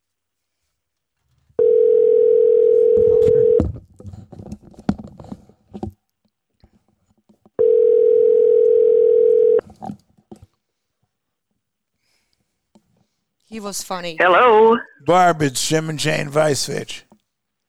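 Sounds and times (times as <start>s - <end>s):
long steady electronic telephone tones of a call being placed: 1.6s - 3.7s, 7.6s - 9.6s
speech: 13.6s - 17.1s.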